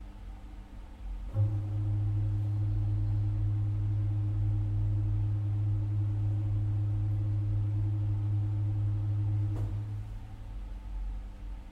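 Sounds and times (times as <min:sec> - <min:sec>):
soubasse pipe organ stop played on the pedalboard: 0:01.3 - 0:10.4.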